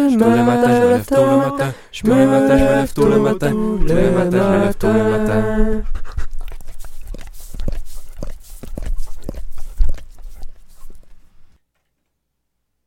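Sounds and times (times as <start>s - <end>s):
speech: 0.1s - 6.0s
dog huffing and snorting: 5.8s - 11.2s.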